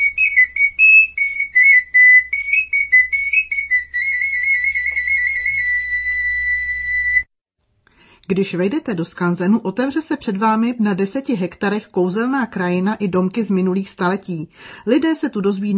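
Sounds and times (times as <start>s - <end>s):
small shepherd's pipe playing high notes: 0.0s - 7.3s
speech: 8.3s - 15.7s.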